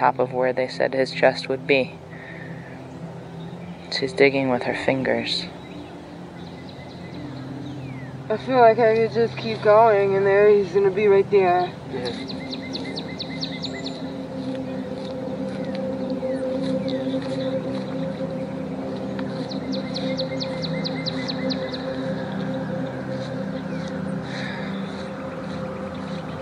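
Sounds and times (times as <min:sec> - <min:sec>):
speech: 0:00.0 - 0:02.1, 0:03.9 - 0:05.6, 0:08.3 - 0:12.5
birds chirping and singing outdoors: 0:00.0 - 0:26.4
low droning hum: 0:00.0 - 0:26.4.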